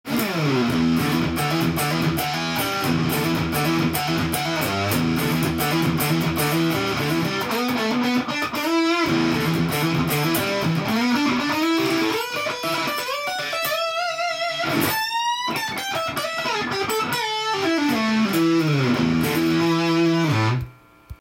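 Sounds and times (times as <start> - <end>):
guitar through rover fuzz: 0.1 - 20.9.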